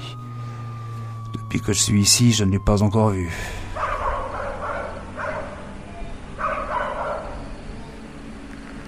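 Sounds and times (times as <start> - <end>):
speech: 1.5 - 3.6
dog barking: 3.8 - 5.7, 6.4 - 7.4.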